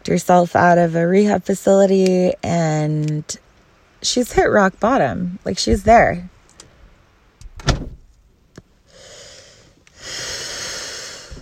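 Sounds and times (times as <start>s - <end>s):
speech: 0.1s - 3.4s, 4.0s - 6.3s
gusty wind roaring across the microphone: 5.5s - 6.3s
car door blown closed by the wind slamming shut: 7.4s - 8.1s.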